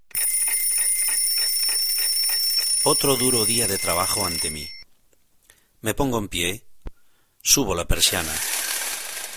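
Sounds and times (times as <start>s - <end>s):
alarm clock ringing with shrill electronic tone: 0.1s - 4.8s
speech: 2.8s - 4.8s, 5.8s - 6.7s, 7.4s - 8.6s.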